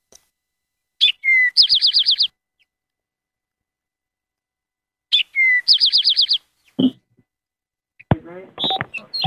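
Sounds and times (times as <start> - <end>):
Eastern Towhee singing: 1.0 - 2.8, 5.1 - 7.0, 8.6 - 9.2
person speaking: 8.1 - 9.2.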